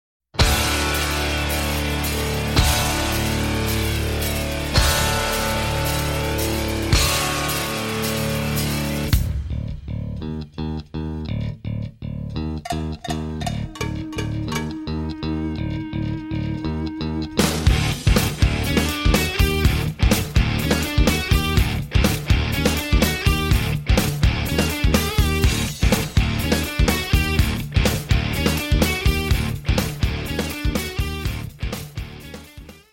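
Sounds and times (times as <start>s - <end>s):
loud distorted rock band with guitar in drop D tuning: 0.4s - 11.8s, 12.4s - 32.9s
sparse punchy bass guitar riff: 0.4s - 32.7s
sharp cowbell hits from the percussion set: 12.6s - 15.0s.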